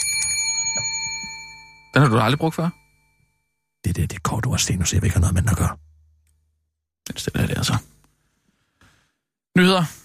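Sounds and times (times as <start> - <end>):
small bell ringing: 0.0 - 3.8
speech: 2.0 - 2.8, 3.8 - 5.8, 7.1 - 8.0, 9.6 - 10.0.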